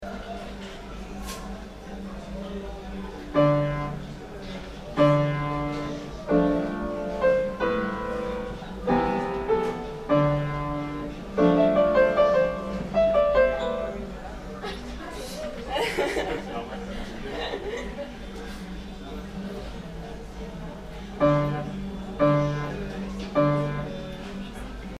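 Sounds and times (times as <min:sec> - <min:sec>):
piano ambience: 0:03.3 - 0:14.4, 0:21.0 - 0:24.9
laughter: 0:14.6 - 0:18.7.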